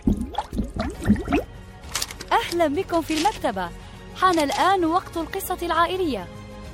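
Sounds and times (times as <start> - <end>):
air blown through water underwater: 0.0 - 1.5
speech: 1.1 - 1.4, 2.5 - 6.4.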